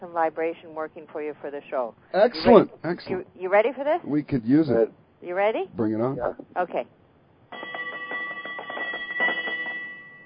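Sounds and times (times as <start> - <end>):
speech: 0.1 - 7.0
ship's bell clanging: 7.5 - 10.2.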